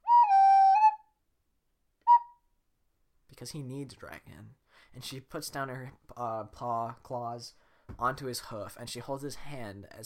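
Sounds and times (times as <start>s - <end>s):
whistle: 0.0s - 1.1s, 2.0s - 2.4s
speech: 3.4s - 10.0s.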